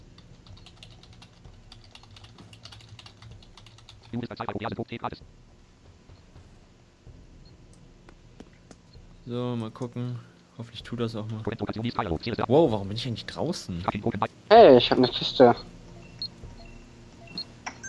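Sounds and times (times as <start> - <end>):
faint constant noise: 0.0 - 17.8
typing a message on a computer keyboard: 0.1 - 4.7
speech: 4.1 - 5.5, 9.3 - 15.7.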